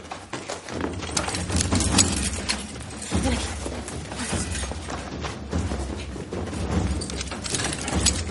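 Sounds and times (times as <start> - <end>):
metallic clanks and thuds of shackles: 0.0 - 8.2
keys jangling while unlocking shackles: 0.7 - 5.0, 6.7 - 8.2.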